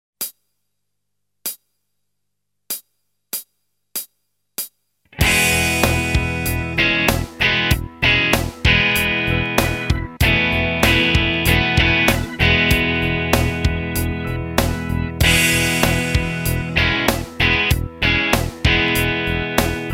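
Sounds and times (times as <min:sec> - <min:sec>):
guitar playing chord variations: 0:05.1 - 0:19.9.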